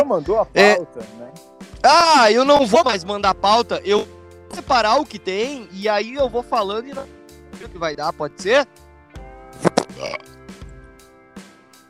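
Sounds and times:
speech: 0:00.0 - 0:08.8
fart into the microphone: 0:09.6 - 0:10.3.

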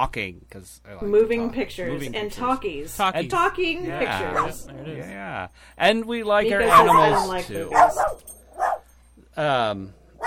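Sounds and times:
speech: 0:00.0 - 0:08.3, 0:09.4 - 0:10.0
dogs barking: 0:04.1 - 0:04.7, 0:06.6 - 0:08.9.

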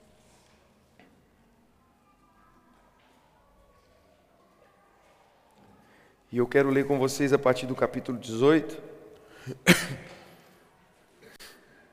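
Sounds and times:
speech: 0:06.3 - 0:08.9
hoarse person coughing: 0:09.5 - 0:10.4
throat clearing: 0:09.5 - 0:10.4.

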